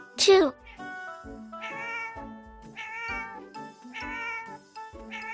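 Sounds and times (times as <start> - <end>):
speech: 0.2 - 0.6
cat meowing: 1.6 - 5.3.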